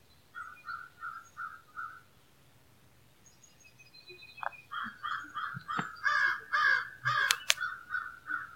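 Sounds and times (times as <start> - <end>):
crows cawing in Arkansas: 0.4 - 2.1, 4.7 - 8.5.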